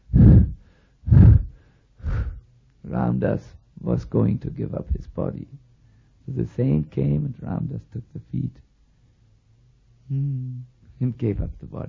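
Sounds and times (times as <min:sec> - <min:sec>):
voice imitating the labored breathing of a dying man: 0:00.0 - 0:02.4
speech: 0:03.1 - 0:05.7, 0:06.3 - 0:08.7, 0:10.1 - 0:11.8.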